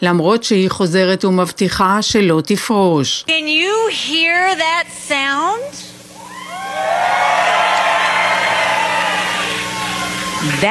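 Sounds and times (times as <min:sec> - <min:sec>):
speech: 0:00.0 - 0:05.9, 0:10.4 - 0:10.7
large crowd cheering at political rally: 0:06.2 - 0:10.7.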